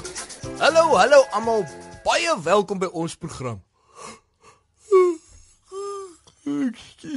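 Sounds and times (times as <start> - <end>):
speech: 0.7 - 4.2, 4.9 - 5.2, 6.5 - 7.1
person yawning after little sleep: 4.9 - 6.2.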